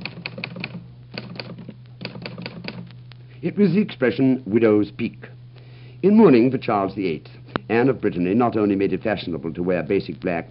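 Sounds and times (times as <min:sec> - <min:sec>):
Underwood manual typewriter keys clacking: 0:00.0 - 0:02.8
low steady hum: 0:00.0 - 0:10.4
speech: 0:03.4 - 0:05.3, 0:06.0 - 0:10.4.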